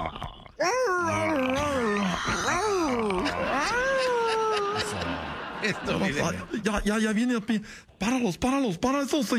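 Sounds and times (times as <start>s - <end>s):
person imitating a hurt dog: 0.6s - 5.1s
laughter: 1.7s - 6.9s
speech: 5.6s - 9.3s.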